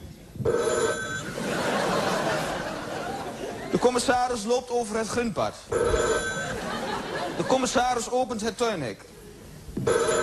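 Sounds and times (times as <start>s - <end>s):
telephone bell sound effect ringing: 0.5s - 1.4s, 5.7s - 6.7s, 9.8s - 10.2s
laughter: 1.2s - 3.9s, 6.4s - 7.8s
speech: 3.8s - 6.3s, 7.4s - 9.2s.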